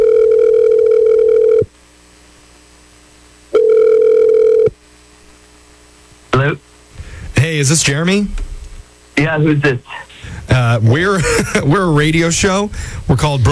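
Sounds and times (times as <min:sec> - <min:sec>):
electronic telephone ring tones on the line: 0:00.0 - 0:01.7, 0:03.5 - 0:04.8
speech: 0:07.6 - 0:08.5, 0:09.3 - 0:13.4
laughter: 0:09.9 - 0:13.4.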